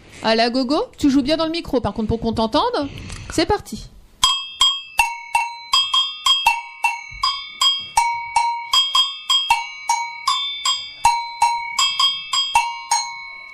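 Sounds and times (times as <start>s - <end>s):
speech: 0.2s - 3.9s
large agogô bell giving the low tone: 4.2s - 13.5s.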